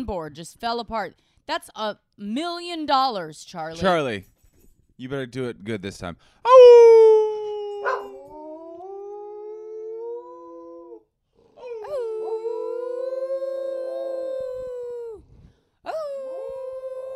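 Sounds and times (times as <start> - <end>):
speech: 0.0 - 4.3, 5.0 - 7.1
dog howling: 6.5 - 11.0, 11.6 - 15.2, 15.9 - 17.1.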